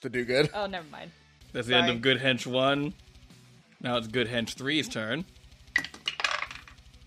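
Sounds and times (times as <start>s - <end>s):
speech: 0.0s - 3.0s, 3.8s - 6.0s
dice rolled across a hard surface: 5.8s - 6.8s.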